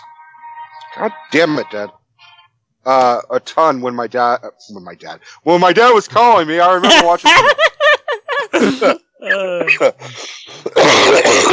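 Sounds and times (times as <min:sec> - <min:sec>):
speech: 0:01.0 - 0:02.0, 0:02.8 - 0:07.7, 0:08.5 - 0:11.5
person coughing: 0:10.6 - 0:11.5
throat clearing: 0:10.6 - 0:11.5.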